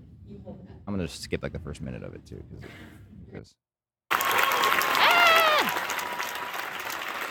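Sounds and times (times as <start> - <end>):
speech: 0.5 - 3.6
large crowd applauding: 4.1 - 7.2
whoop or cheer: 4.1 - 7.2.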